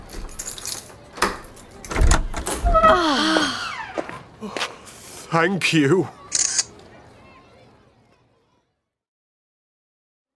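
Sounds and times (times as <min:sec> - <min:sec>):
door latch clicks and rattles: 0:00.0 - 0:03.1
creaking squeal from door hinges: 0:00.0 - 0:03.6
speech: 0:05.3 - 0:06.2.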